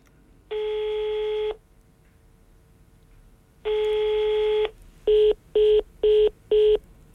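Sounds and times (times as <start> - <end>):
long electronic phone tones of a call to a police emergency number in Zurich: 0.5 - 1.6, 3.7 - 6.8.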